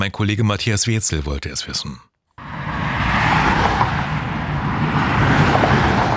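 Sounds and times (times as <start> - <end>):
speech: 0.0 - 2.1
motorway traffic tyres and engines roaring past: 2.4 - 6.1.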